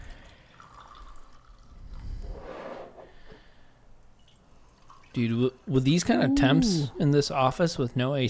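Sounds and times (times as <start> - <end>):
faint drips and clinks: 0.1 - 1.7, 4.2 - 5.6
batch brew coffee pouring into a cup: 0.1 - 1.9, 4.2 - 5.2
speech: 5.2 - 8.2.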